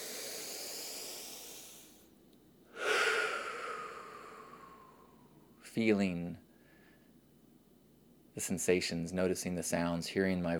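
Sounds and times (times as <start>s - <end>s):
slow deep breath in and out: 0.0s - 2.1s, 2.7s - 5.5s, 6.5s - 7.2s
speech: 5.8s - 6.4s, 8.4s - 10.5s.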